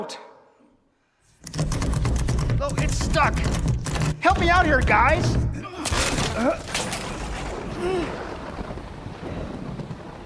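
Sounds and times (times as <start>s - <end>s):
speech: 0.0s - 0.3s, 2.6s - 7.0s, 7.8s - 8.3s
steady roaring wind at a stormy sea: 7.1s - 10.2s.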